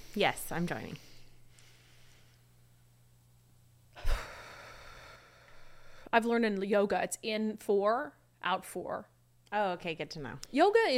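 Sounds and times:
speech: 0.2 - 1.1, 6.1 - 10.9
person taking a deep breath: 4.0 - 6.1.

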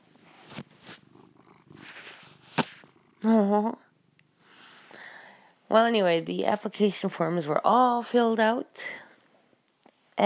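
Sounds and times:
soft rustling bumps: 0.0 - 2.9
cat purring: 0.0 - 5.5
speech: 3.2 - 3.8, 5.7 - 9.0.

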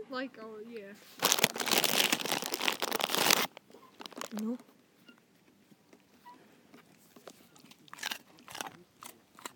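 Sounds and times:
speech: 0.2 - 2.6, 4.3 - 4.7
dog crunching and chewing on carrots: 6.8 - 9.5.

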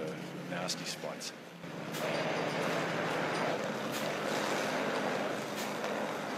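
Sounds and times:
speech: 0.5 - 2.8
water from a hydrant rushing into a large tank truck: 2.8 - 6.3.

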